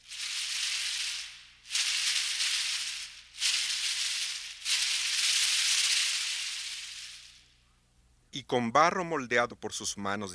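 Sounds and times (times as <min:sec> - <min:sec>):
Yaqui tenabari butterfly cocoon rattles shaking: 0:00.0 - 0:07.6
speech: 0:08.4 - 0:10.3.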